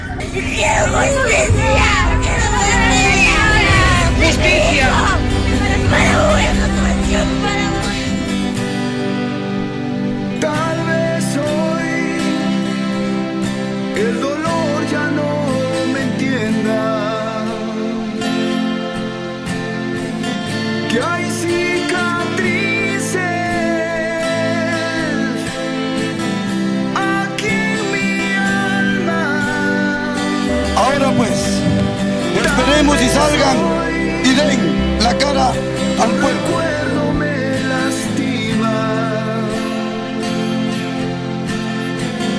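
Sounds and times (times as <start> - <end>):
rock song by a Peruvian band: 0.0 - 42.3
speech: 0.4 - 2.0, 35.0 - 36.6.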